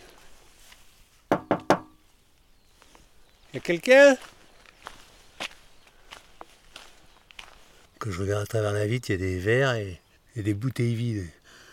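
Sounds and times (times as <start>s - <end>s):
knocking on a door: 1.3s - 2.0s
speech: 3.6s - 4.4s, 8.0s - 11.4s.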